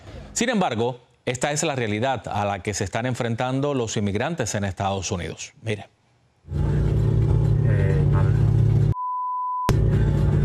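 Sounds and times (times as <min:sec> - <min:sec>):
speech: 0:00.4 - 0:06.6
car engine running with a low rumble: 0:06.5 - 0:09.0
long flat electronic beep: 0:09.0 - 0:09.7.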